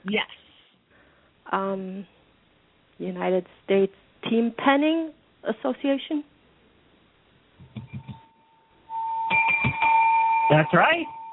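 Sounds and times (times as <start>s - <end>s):
speech: 0.0s - 0.4s, 1.5s - 2.2s, 3.0s - 6.3s, 10.5s - 11.2s
thumps: 7.6s - 8.2s
thin feeble bell ringing with a steady tone: 8.0s - 11.3s.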